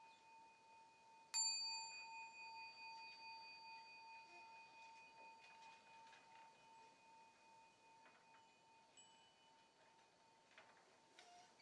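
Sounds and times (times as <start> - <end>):
meditation bell ringing: 0.0 - 9.8.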